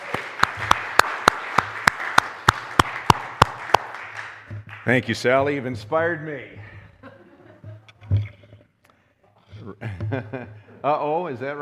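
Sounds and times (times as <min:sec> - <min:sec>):
audience applause for a singer during a Christmas Sunday service: 0:00.0 - 0:05.1
sharp evenly spaced claps in a steady rhythm: 0:00.0 - 0:05.6
speech: 0:04.9 - 0:06.6, 0:10.1 - 0:11.6
laughter: 0:06.6 - 0:08.1, 0:09.6 - 0:11.0.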